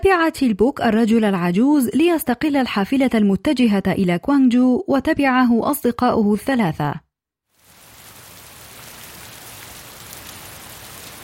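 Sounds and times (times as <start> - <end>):
speech: 0.0 - 7.0
rain falling: 7.5 - 11.2.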